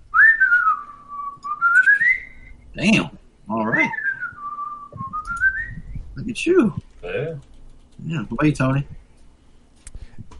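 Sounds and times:
person whistling a tune: 0:00.1 - 0:02.6, 0:03.9 - 0:05.9
speech: 0:02.8 - 0:04.0, 0:06.2 - 0:09.0.

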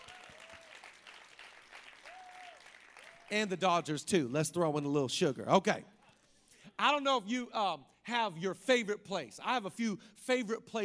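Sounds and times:
crowd applauding: 0:00.0 - 0:03.5
speech: 0:03.3 - 0:06.0, 0:06.8 - 0:10.8.

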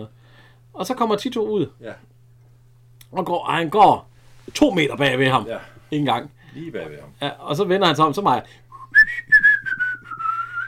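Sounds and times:
speech: 0:00.0 - 0:02.1, 0:03.1 - 0:09.4
man whistling a short wavering tune while walking: 0:08.7 - 0:10.6.

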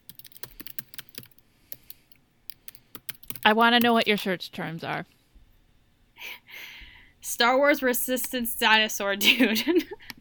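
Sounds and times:
typing on a computer keyboard: 0:00.0 - 0:01.9, 0:02.5 - 0:04.1
speech: 0:03.4 - 0:05.2, 0:07.3 - 0:10.1.

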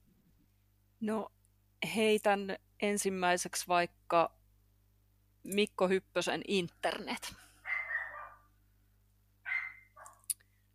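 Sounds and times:
speech: 0:01.0 - 0:04.4, 0:05.4 - 0:07.5
dog barking: 0:07.6 - 0:08.5, 0:09.5 - 0:10.3.

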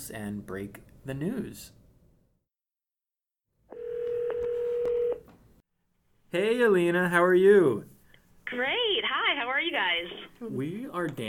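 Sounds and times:
speech: 0:00.1 - 0:01.8, 0:06.3 - 0:07.9, 0:08.5 - 0:11.2
phone dial tone: 0:03.7 - 0:05.3.

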